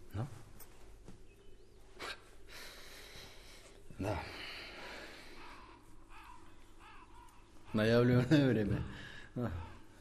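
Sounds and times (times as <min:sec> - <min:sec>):
steady hissy outdoor background: 0:00.0 - 0:09.9
speech: 0:00.2 - 0:00.4, 0:04.0 - 0:04.4, 0:07.8 - 0:09.7
crows cawing: 0:04.1 - 0:09.9.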